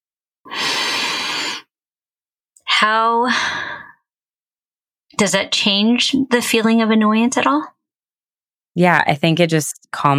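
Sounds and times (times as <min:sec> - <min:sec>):
person taking a deep breath: 0:00.5 - 0:01.7
speech: 0:02.8 - 0:03.7, 0:05.2 - 0:07.8, 0:08.8 - 0:10.1.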